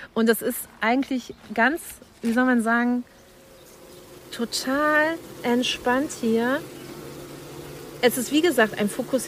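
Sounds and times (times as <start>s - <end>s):
speech: 0.2s - 3.1s, 4.4s - 6.8s, 8.0s - 9.2s
many honeybees buzzing inside a school hive box: 2.3s - 9.2s.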